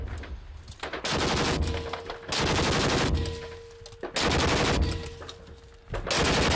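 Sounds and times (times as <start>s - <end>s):
machine gun firing at the enemy: 0.9s - 3.5s, 4.1s - 5.3s, 6.0s - 6.5s.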